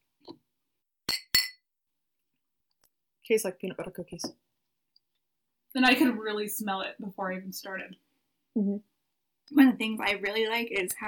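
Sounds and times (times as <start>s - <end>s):
beer glasses clinking in a toast: 1.1s - 1.6s
speech: 3.3s - 4.6s, 5.8s - 8.9s, 9.5s - 11.0s.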